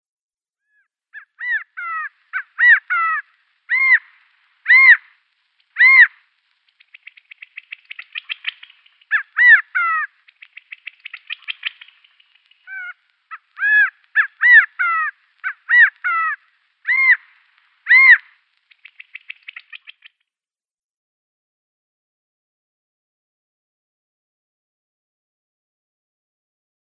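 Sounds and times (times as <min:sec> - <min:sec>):
male California quail display call: 0:01.2 - 0:20.2.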